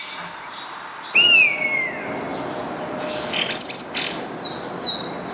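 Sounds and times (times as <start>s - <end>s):
Spotless starling song: 1.1s - 5.3s.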